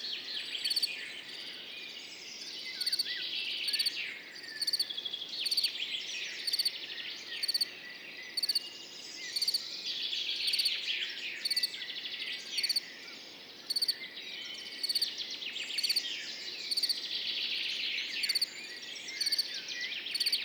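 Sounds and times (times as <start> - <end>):
dawn chorus of many chirping, twittering birds: 0.0 - 20.4
field cricket singing: 0.6 - 1.6, 2.7 - 5.8, 6.4 - 6.7, 7.4 - 7.7, 8.3 - 8.7, 9.3 - 9.7, 10.4 - 10.8, 11.4 - 11.8, 12.5 - 12.9, 13.6 - 14.0, 14.6 - 17.1, 18.1 - 20.4.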